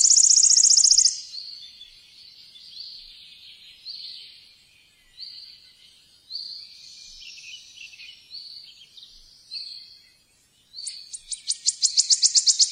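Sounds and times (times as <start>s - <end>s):
wood warbler song: 0.0s - 12.7s.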